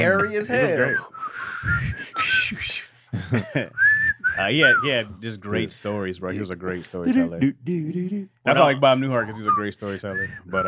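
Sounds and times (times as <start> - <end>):
speech: 0.0 - 10.6
person whistling a TV theme melody: 0.7 - 2.9, 3.8 - 5.0, 9.2 - 10.6.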